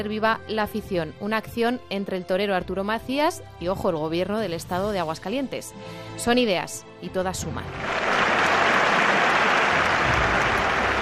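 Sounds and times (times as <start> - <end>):
speech: 0.0 - 8.1
crowd applauding: 7.7 - 10.9.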